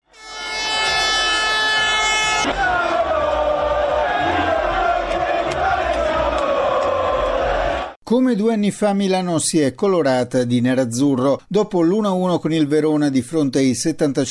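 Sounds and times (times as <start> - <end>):
sustained horn blaring: 0.0 - 7.9
outdoor crowd of football fans roaring and chanting at street parade: 1.7 - 8.0
speech: 8.1 - 14.3.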